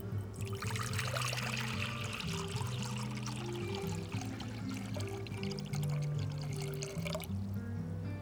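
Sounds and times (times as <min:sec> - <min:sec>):
hand-shaken milk tea pouring into a cup: 0:00.0 - 0:07.8
soft music: 0:00.0 - 0:08.1.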